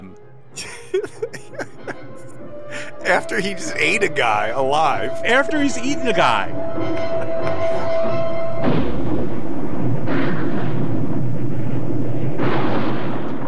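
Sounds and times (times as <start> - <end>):
laughter: 0.6 - 8.4
speech: 3.1 - 7.3
tonal hum: 3.4 - 13.4
movie explosion of a shark with rumbling debris: 8.6 - 13.4.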